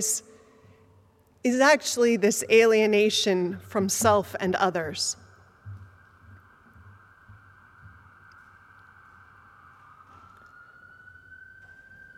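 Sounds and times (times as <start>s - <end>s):
speech: 0.0s - 0.3s, 1.4s - 5.2s
passing ambulance siren: 5.5s - 12.1s.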